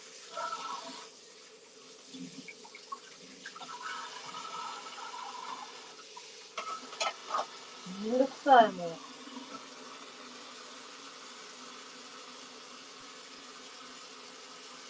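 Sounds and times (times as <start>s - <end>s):
running tap water pouring into a sink: 0.0s - 14.8s
speech: 8.0s - 9.1s.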